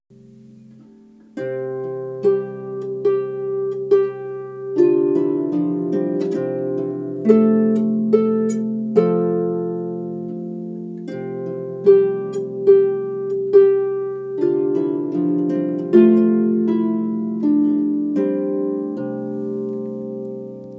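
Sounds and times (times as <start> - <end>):
harp played with both hands: 0.1 - 20.7.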